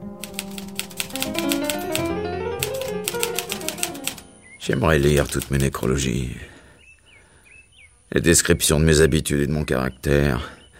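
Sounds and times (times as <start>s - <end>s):
typing on a keyboard or typewriter: 0.2s - 4.3s, 5.0s - 5.8s
speech: 4.7s - 6.5s, 8.1s - 10.6s.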